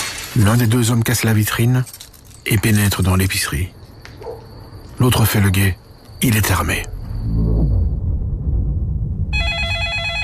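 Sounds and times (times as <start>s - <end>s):
speech: 0.4s - 3.8s, 5.0s - 7.0s
low rumbling background: 6.3s - 9.5s
police telephone ringing with a warbling electronic tone: 9.4s - 10.2s.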